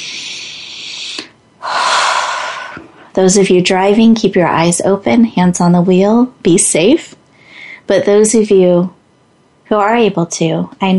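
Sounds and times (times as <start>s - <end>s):
deep breath: 0.0s - 3.1s, 7.3s - 7.8s
speech: 3.2s - 7.2s, 7.9s - 9.0s, 9.7s - 10.9s.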